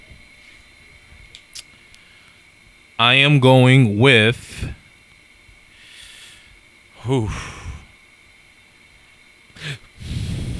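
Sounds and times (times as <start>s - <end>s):
speech: 3.0s - 4.8s, 7.1s - 7.6s
rush of breathy noise: 3.1s - 4.8s, 5.8s - 8.0s, 9.6s - 10.5s
person sneezing: 7.0s - 7.9s, 9.6s - 10.5s.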